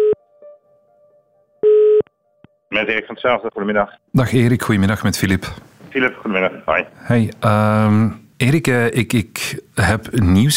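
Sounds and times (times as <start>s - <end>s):
ringing tone of an outgoing telephone call: 1.6s - 2.1s
speech: 2.7s - 10.5s
faint continuous hum: 2.8s - 10.5s.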